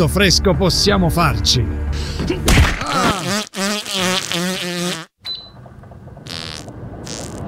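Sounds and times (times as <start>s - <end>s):
speech: 0.0s - 3.4s
big loud buzzing fart: 2.8s - 5.2s, 6.2s - 7.4s.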